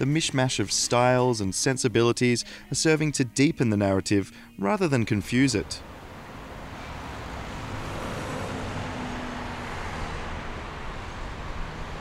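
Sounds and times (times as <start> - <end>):
speech: 0.0 - 6.0
city street traffic of passing cars and heavier vehicles in Madrid: 5.1 - 12.0.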